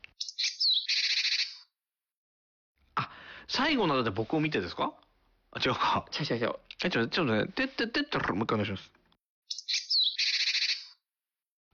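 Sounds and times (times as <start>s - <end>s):
small bird giving whistled warning phrase and buzzing chatter: 0.0s - 1.8s, 9.5s - 11.0s
speech: 3.5s - 9.0s.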